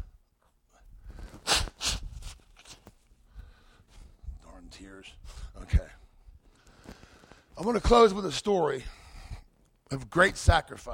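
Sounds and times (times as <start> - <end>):
soft sniffs: 0.7 - 4.1
person blowing nose: 1.1 - 2.9
speech: 7.6 - 9.0, 9.9 - 10.9.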